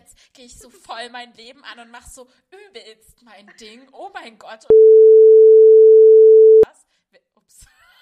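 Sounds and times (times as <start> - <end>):
speech: 0.4 - 5.9
loud steady single-pitched censor bleep tone: 4.7 - 6.7.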